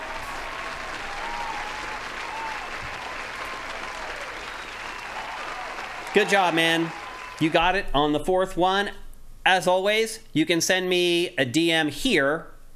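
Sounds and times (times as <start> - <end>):
crowd applauding: 0.0 - 7.8
speech: 6.2 - 12.5.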